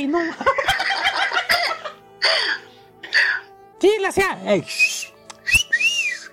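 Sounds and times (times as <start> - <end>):
speech: 0.0 - 0.6, 2.2 - 2.6, 3.8 - 5.1
laughter: 0.2 - 2.0
person whistling through their lips: 4.7 - 6.3.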